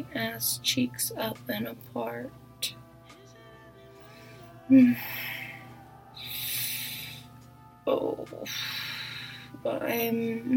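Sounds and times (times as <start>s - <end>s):
speech: 0.0s - 2.8s, 4.7s - 5.4s, 7.9s - 8.9s, 9.6s - 10.5s
heavy breathy exhalations during sexual activity: 4.0s - 7.4s, 8.5s - 9.6s.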